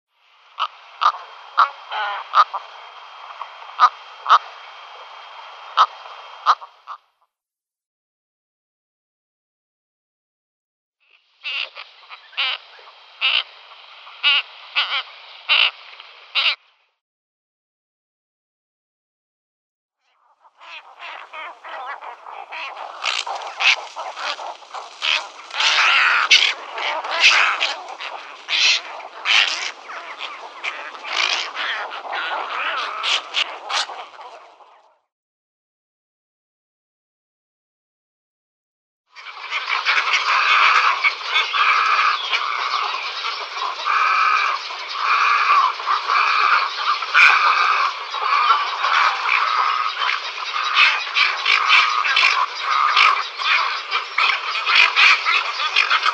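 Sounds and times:
cattle egret: 0.6 - 7.1, 11.4 - 16.6, 20.2 - 35.0, 39.2 - 56.1.

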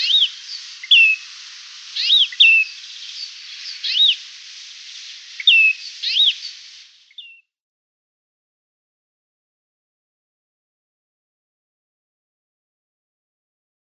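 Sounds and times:
great grey shrike song of sharp chirps and slurred whistles: 0.0 - 7.5.

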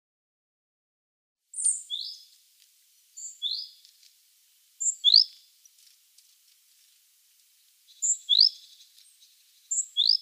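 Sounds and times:
great tit thin high whistled calls: 1.5 - 2.2, 3.2 - 3.8, 4.8 - 5.4, 7.9 - 10.2.

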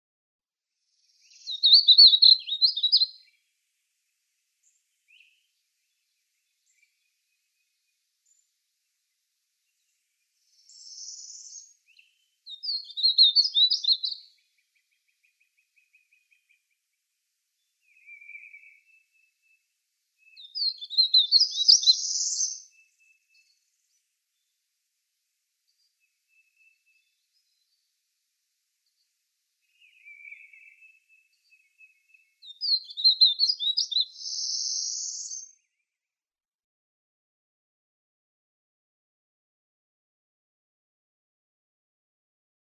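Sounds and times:
Painted Bunting singing: 1.2 - 3.4, 4.6 - 8.5, 9.6 - 17.0, 17.6 - 24.6, 25.7 - 28.0, 28.8 - 36.0.

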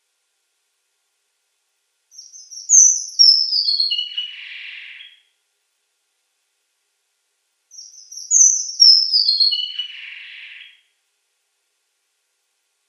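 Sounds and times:
red avadavat descending twittered song with buzzy ending: 2.2 - 5.2, 7.7 - 10.7.

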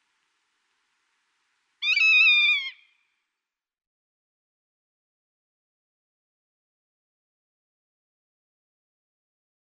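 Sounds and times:
rough-legged buzzard mewing whistle call: 1.8 - 2.9.

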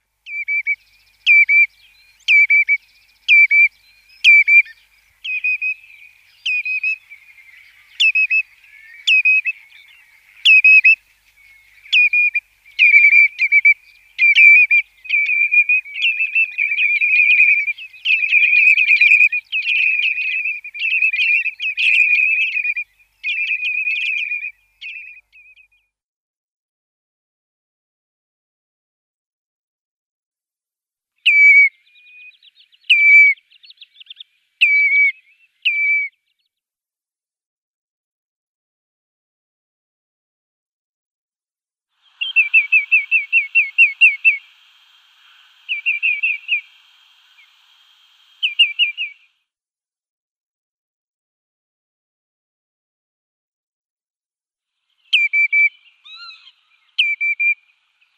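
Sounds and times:
Common Redshank calls: 0.3 - 25.7, 31.2 - 36.1, 42.0 - 49.3, 55.0 - 58.1.

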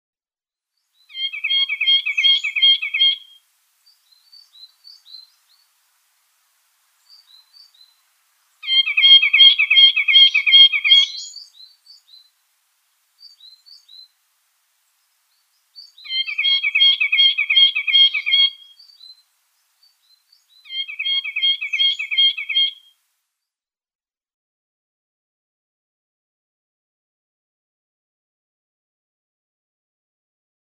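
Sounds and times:
Algerian Nuthatch song: 1.0 - 5.8, 7.0 - 12.4, 14.9 - 23.0.

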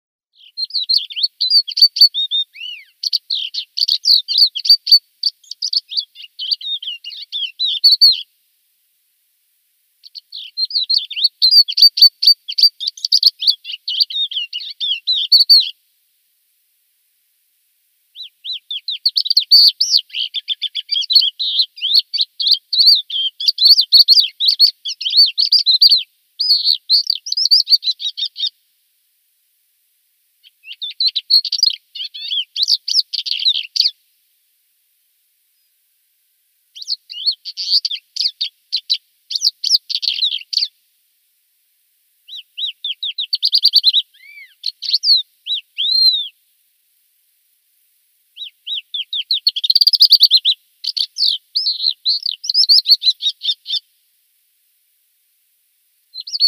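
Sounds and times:
Thekla lark singing: 0.4 - 8.3, 10.0 - 15.8, 18.1 - 28.6, 30.4 - 34.0, 36.8 - 40.7, 42.3 - 46.4, 48.4 - 53.9, 56.1 - 56.4.

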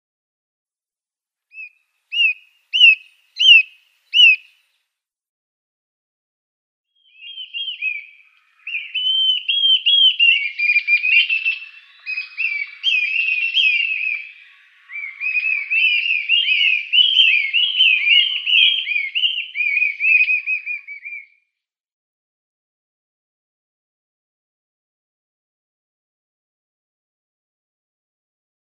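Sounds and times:
Dideric cuckoo calling: 1.5 - 4.5, 7.0 - 21.4.

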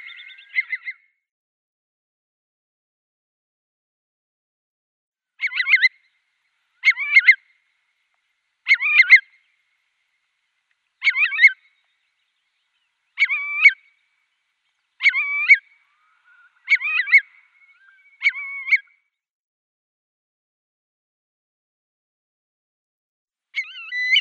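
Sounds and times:
Eurasian curlew doubled whistled calls: 0.0 - 1.0, 5.4 - 6.1, 6.8 - 7.5, 8.7 - 9.5, 11.0 - 12.0, 12.7 - 14.0, 15.0 - 19.0, 23.6 - 24.2.

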